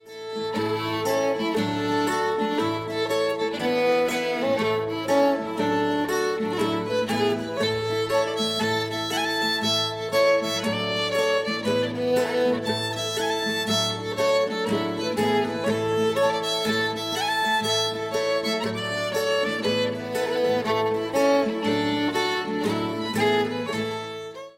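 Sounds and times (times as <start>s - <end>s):
strathspey music: 0.1s - 24.5s.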